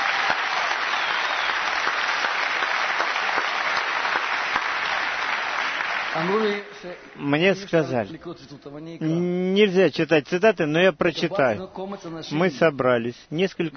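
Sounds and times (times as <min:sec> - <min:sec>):
applause from a sizable audience: 0:00.0 - 0:06.7
speech: 0:06.2 - 0:13.7.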